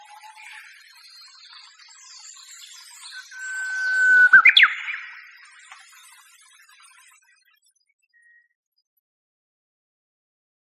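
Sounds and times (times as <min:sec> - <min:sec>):
Japanese bush warbler singing: 0:03.2 - 0:05.0.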